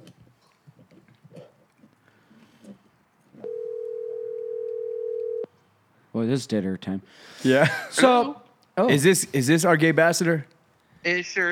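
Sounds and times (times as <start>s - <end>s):
telephone ringing tone of an outgoing phone call: 3.4s - 5.5s
speech: 6.2s - 11.5s.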